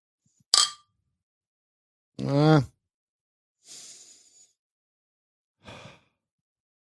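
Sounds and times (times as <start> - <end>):
glasses clinking in a toast: 0.6 - 0.8
speech: 2.2 - 2.7.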